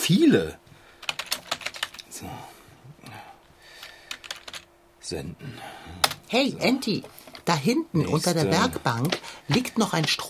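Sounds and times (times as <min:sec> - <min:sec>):
speech: 0:00.1 - 0:00.6, 0:02.2 - 0:02.5, 0:05.1 - 0:10.2
rapid typing on a computer keyboard: 0:01.0 - 0:02.0, 0:03.8 - 0:04.7, 0:06.0 - 0:06.2.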